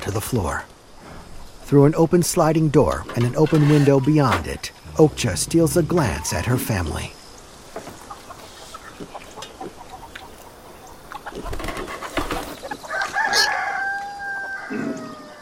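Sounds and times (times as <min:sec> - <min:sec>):
speech: 0:00.0 - 0:00.8, 0:01.7 - 0:07.2
chickens clucking and scratching outdoors: 0:02.9 - 0:15.4
rooster crowing outdoors: 0:12.9 - 0:15.4.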